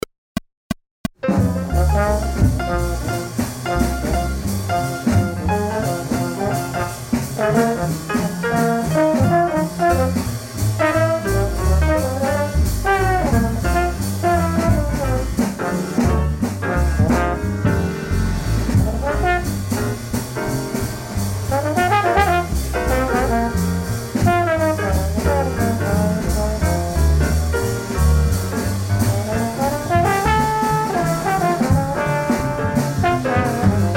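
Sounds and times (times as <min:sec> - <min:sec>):
full band playing blues in F: 0:01.2 - 0:33.9.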